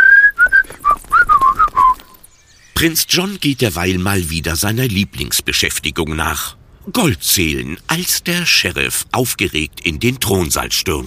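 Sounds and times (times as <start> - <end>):
people whistling a tune while strolling out of a village: 0.0 - 2.2
speech: 2.8 - 11.0.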